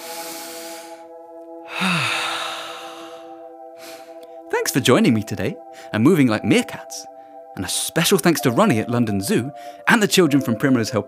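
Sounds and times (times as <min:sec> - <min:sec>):
long airy deep-breath exhale during a children's movement exercise: 0:00.0 - 0:01.1, 0:01.7 - 0:04.2
steady sustained musical tones: 0:00.0 - 0:11.0
speech: 0:04.5 - 0:11.0.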